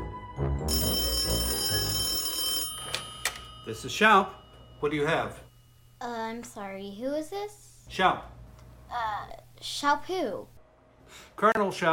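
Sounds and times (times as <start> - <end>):
old-fashioned telephone bell ringing: 0.7 - 5.5
speech: 3.7 - 5.4, 6.0 - 10.5, 11.1 - 11.9.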